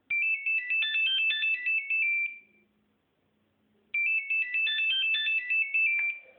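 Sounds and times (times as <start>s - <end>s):
phone ringtone: 0.1s - 2.5s, 4.0s - 6.3s.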